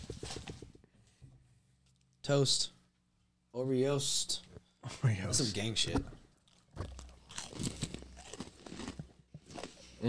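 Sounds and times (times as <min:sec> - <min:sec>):
speech: 0:02.3 - 0:02.8, 0:03.6 - 0:06.2
crunching and chewing fudge-flavored elf cookies: 0:06.3 - 0:10.0.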